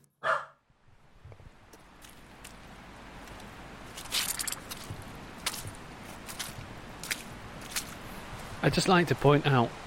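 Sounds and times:
dog barking: 0.2s - 0.6s
footsteps through wet muddy ground on a river bank: 1.6s - 9.0s
speech: 8.6s - 9.8s.

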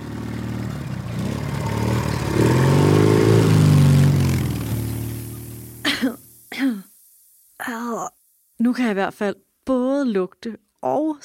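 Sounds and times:
motorcycle engine idling and revving: 0.0s - 6.0s
speech: 8.8s - 11.2s.

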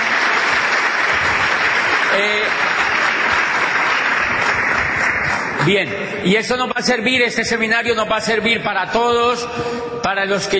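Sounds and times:
large audience applause: 0.0s - 5.8s
speech: 2.2s - 2.9s, 5.6s - 10.5s.

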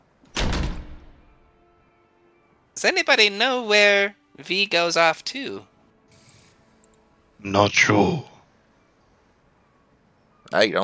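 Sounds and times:
door slamming shut: 0.3s - 1.4s
speech: 2.8s - 5.7s, 7.4s - 8.3s, 10.5s - 10.8s.

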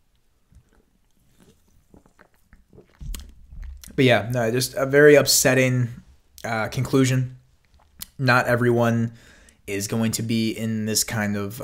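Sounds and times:
person slurping and swallowing a drink: 0.5s - 4.4s, 7.6s - 8.2s
speech: 4.0s - 7.4s, 8.2s - 11.6s.

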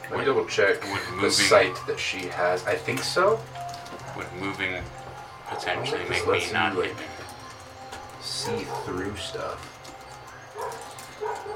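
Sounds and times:
speech: 0.2s - 3.6s, 4.2s - 7.2s, 8.2s - 9.7s
dog barking: 5.5s - 6.0s, 8.4s - 9.0s, 10.6s - 11.5s.

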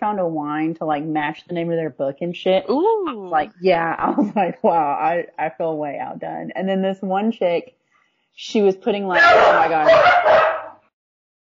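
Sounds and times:
speech: 0.0s - 7.8s, 8.4s - 10.4s
dog barking while walking by: 9.1s - 10.9s.

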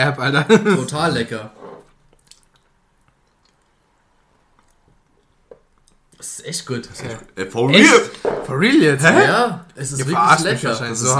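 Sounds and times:
speech: 0.0s - 1.6s, 6.2s - 11.1s
person chewing a spoonful of food: 1.8s - 6.2s.

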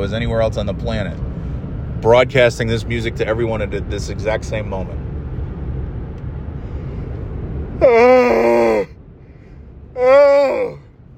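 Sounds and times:
speech: 0.0s - 1.3s, 2.0s - 5.0s, 7.8s - 8.0s
person yawning: 7.8s - 8.9s, 10.0s - 10.9s.

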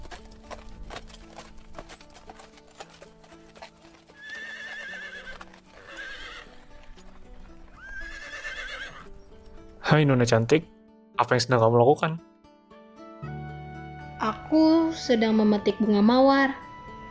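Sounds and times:
horse hooves clip-clopping as a rider arrives: 0.0s - 10.2s
ridden horse whinnying: 4.0s - 9.2s
speech: 9.9s - 12.3s, 14.5s - 16.6s.

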